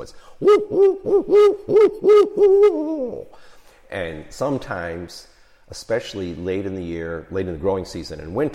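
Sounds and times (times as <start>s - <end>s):
speech: 0.0s - 8.5s
barred owl hooting call: 0.4s - 3.3s.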